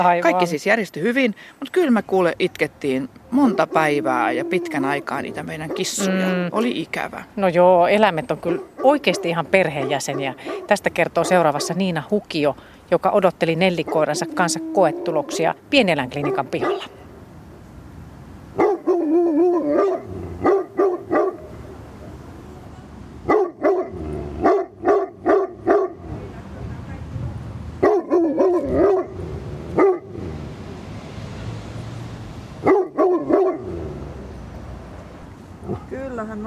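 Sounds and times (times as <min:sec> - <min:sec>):
speech: 0:00.0 - 0:17.0
large dog barking: 0:03.4 - 0:06.1, 0:08.4 - 0:11.9, 0:13.8 - 0:15.4, 0:16.2 - 0:17.0, 0:18.6 - 0:21.7, 0:23.2 - 0:26.3, 0:27.8 - 0:30.4, 0:32.6 - 0:34.0.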